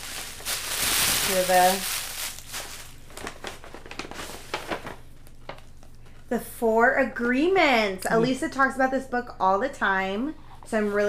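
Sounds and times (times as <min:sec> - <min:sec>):
Christmas-themed paper gift bag crinkling and rustling as it is opened: 0:00.0 - 0:05.7
speech: 0:01.3 - 0:01.9, 0:06.3 - 0:11.0.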